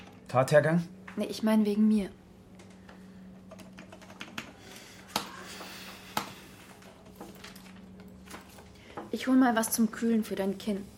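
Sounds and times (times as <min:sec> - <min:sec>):
speech: 0:00.3 - 0:02.2, 0:09.2 - 0:10.9
fingers typing on a computer keyboard: 0:03.5 - 0:04.6.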